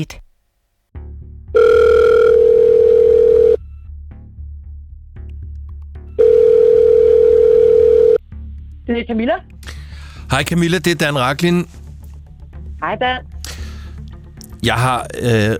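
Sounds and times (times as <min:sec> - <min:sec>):
speech: 0:00.0 - 0:00.2, 0:08.9 - 0:09.5, 0:10.3 - 0:11.8, 0:12.8 - 0:13.6, 0:14.6 - 0:15.5
telephone ringback tone of an outgoing phone call: 0:01.6 - 0:03.6, 0:06.2 - 0:08.2.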